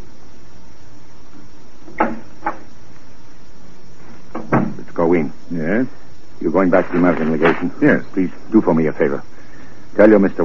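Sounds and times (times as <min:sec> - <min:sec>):
quiet steady hiss: 0:00.0 - 0:10.4
door opening and closing: 0:01.8 - 0:02.7, 0:04.3 - 0:04.8
speech: 0:06.6 - 0:09.3, 0:10.0 - 0:10.4.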